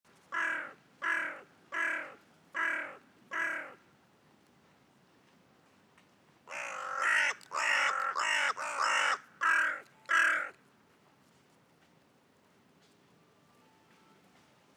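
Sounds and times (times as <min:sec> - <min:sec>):
Carrion Crow Corvus corone giving hoarse caws: 0:00.4 - 0:03.8, 0:06.5 - 0:10.6.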